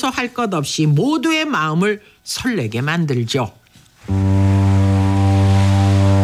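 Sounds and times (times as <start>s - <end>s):
speech: 0.0s - 4.4s
passenger ferry horn at an island village: 4.1s - 6.2s.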